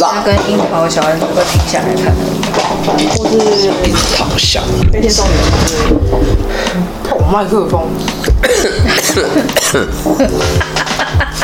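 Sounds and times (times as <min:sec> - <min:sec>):
speech: 0:00.0 - 0:11.4
person coughing: 0:08.4 - 0:10.0
person chuckling: 0:08.5 - 0:11.4.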